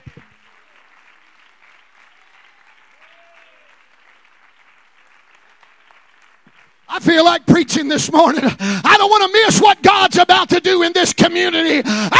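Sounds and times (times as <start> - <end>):
church audience clapping hands: 0.0 - 7.0
faint voices cheering: 2.1 - 3.8
speech: 6.9 - 12.1.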